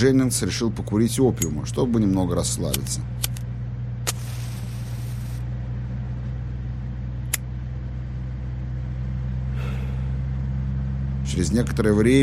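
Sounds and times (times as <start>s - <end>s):
speech: 0.0s - 3.3s, 11.4s - 12.2s
car engine droning while driving through the suburbs: 0.0s - 12.2s
brief hiss: 4.1s - 5.4s.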